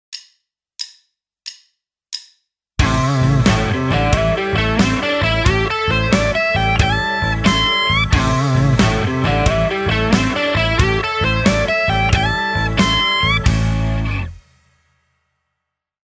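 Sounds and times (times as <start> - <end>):
pentatonic blues music: 2.8 - 14.4.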